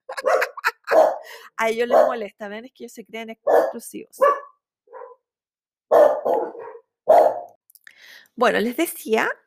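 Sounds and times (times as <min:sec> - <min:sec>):
laughter: 0:00.0 - 0:01.0
dogs barking: 0:00.1 - 0:01.3, 0:01.9 - 0:02.2, 0:03.5 - 0:05.2, 0:05.9 - 0:07.6
speech: 0:01.6 - 0:04.4, 0:08.4 - 0:09.4.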